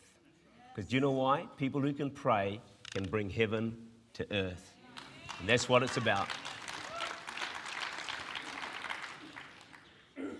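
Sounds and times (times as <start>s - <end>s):
speech: 0.8s - 4.8s, 5.4s - 6.5s
crowd at a church service clapping: 4.9s - 10.2s.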